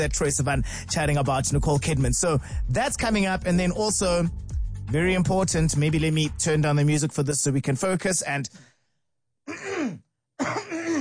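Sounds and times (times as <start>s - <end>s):
speech: 0.0s - 8.7s
rough gravelly throat clearing: 9.5s - 11.0s.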